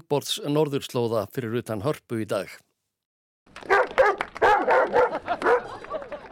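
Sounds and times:
speech: 0.1 - 2.7, 4.9 - 6.0
dog barking and yipping: 3.7 - 5.8
laughter: 4.7 - 6.3.

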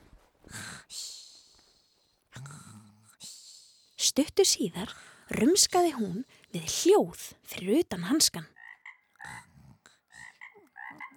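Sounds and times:
speech: 4.2 - 8.6
small frog croaking: 8.5 - 11.1.

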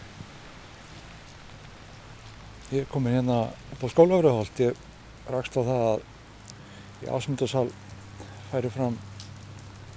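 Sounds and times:
heavy rain pouring down in Reykjavík: 0.0 - 9.9
speech: 2.7 - 6.1, 7.0 - 7.8, 8.5 - 9.1.

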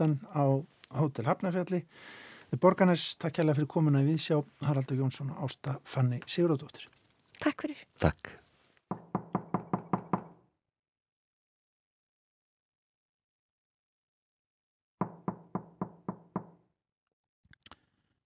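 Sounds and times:
speech: 0.0 - 9.0
knocking on a door: 8.9 - 10.4, 15.0 - 16.7.

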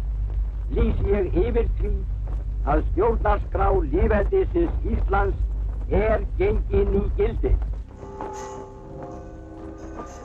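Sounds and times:
low rumble: 0.0 - 10.2
speech: 0.7 - 7.7
church bells ringing in a peal: 7.9 - 10.2.

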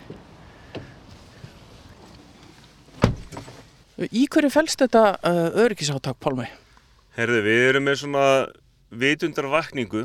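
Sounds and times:
rustling and shuffling of people climbing into a car: 0.0 - 5.1
faint traffic on the Reykjanesbraut road in Iceland: 0.0 - 10.0
solid car door slam: 3.0 - 3.6
speech: 4.0 - 6.6, 7.2 - 10.0.

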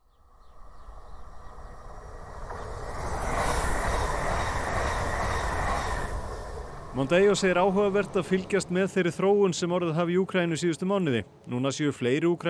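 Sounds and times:
passenger train rolling along the rails: 0.2 - 9.3
speech: 7.0 - 12.4.

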